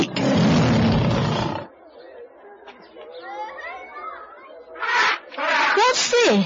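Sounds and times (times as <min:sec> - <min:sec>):
lion roaring: 0:00.0 - 0:01.7
overlapping animal calls and chatter: 0:00.0 - 0:06.4.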